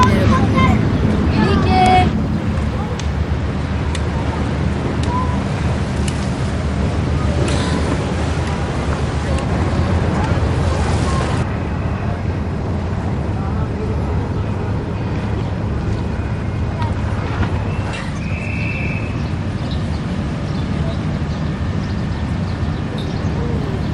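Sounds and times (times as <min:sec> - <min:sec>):
seaside wind buffeting the microphone: 0:00.0 - 0:17.9, 0:18.8 - 0:23.9
passing boats rumbling: 0:00.0 - 0:23.9
faint whistle-like tone: 0:05.1 - 0:05.4, 0:17.7 - 0:19.2.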